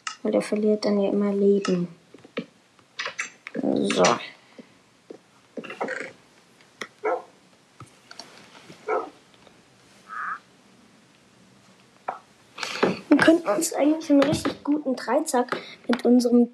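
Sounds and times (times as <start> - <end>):
speech: 0.2 - 2.0, 3.8 - 4.3, 13.5 - 16.5
dog yelping after being hit: 7.0 - 7.3, 8.9 - 9.2, 10.1 - 10.4.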